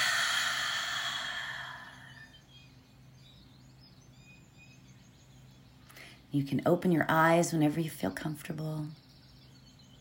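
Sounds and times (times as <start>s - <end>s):
deep breath in and out during a guided relaxation exercise: 0.0s - 2.4s
speech: 6.3s - 9.0s.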